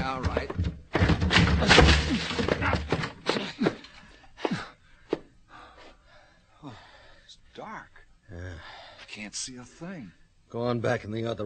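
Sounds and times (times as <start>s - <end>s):
wooden door broken down by shoulder, splintering crash: 0.0s - 3.7s
thuds and cracks: 0.0s - 3.9s
speech: 9.3s - 11.4s.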